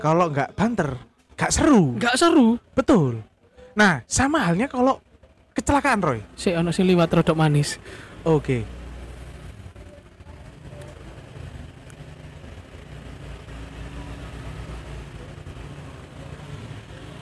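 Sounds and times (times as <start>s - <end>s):
speech: 0.0s - 5.0s, 5.6s - 8.8s
motorcycle engine rumbling: 8.1s - 17.2s.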